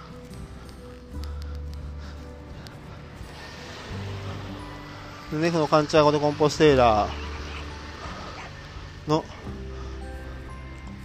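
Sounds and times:
car passing by: 3.2s - 9.1s
speech: 5.3s - 7.2s, 9.1s - 9.6s.

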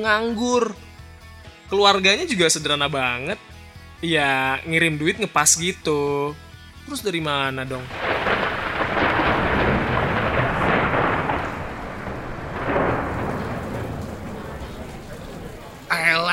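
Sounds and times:
speech: 0.0s - 0.9s, 1.7s - 8.1s
deep rolling thunder: 7.8s - 15.9s
heavy rain: 7.8s - 16.3s.

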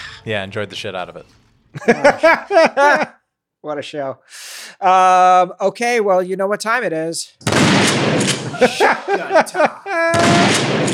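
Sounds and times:
speech: 0.2s - 10.9s
laughter: 1.8s - 3.2s, 8.4s - 10.5s
loud broadband gunfire blasts: 7.4s - 9.1s, 10.1s - 10.9s
shotgun reloading with sharp mechanical clacks: 7.8s - 8.5s, 10.4s - 10.9s.

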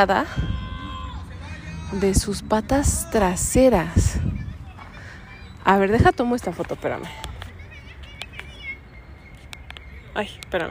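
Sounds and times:
speech: 0.0s - 0.6s, 1.9s - 4.4s, 5.6s - 7.2s, 10.2s - 10.6s
small birds singing and chirping in a park: 3.2s - 10.6s.

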